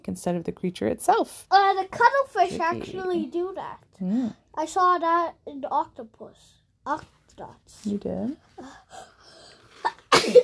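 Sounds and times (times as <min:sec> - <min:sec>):
speech: 0:00.0 - 0:09.1
soft inhale: 0:08.6 - 0:09.8
person sneezing: 0:09.9 - 0:10.4.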